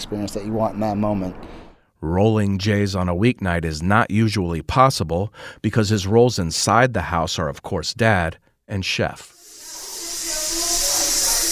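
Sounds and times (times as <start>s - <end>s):
speech: 0.1s - 9.4s
pressure cooker hissing in a kitchen: 9.3s - 11.5s.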